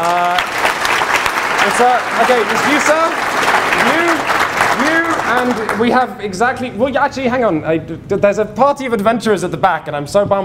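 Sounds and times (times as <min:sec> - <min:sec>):
audience round of applause: 0:00.0 - 0:06.1
speech: 0:01.6 - 0:04.3, 0:05.3 - 0:10.4.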